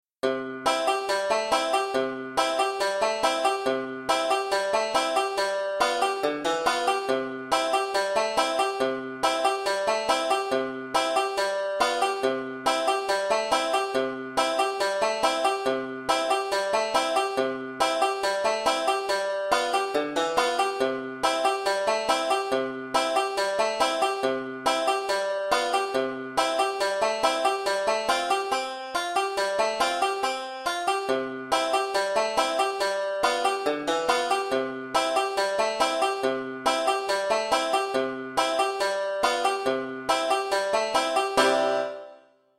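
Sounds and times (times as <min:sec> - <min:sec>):
five-string banjo in C tuning: 0:00.2 - 0:42.3.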